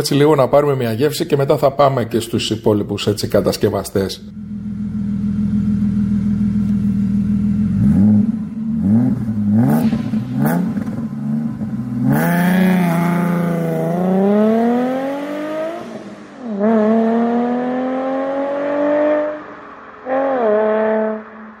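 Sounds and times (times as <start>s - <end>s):
speech: 0.0s - 4.4s
Alfa Romeo GTV Twin Callaway Turbo sports car engine idling and revving: 4.2s - 21.5s.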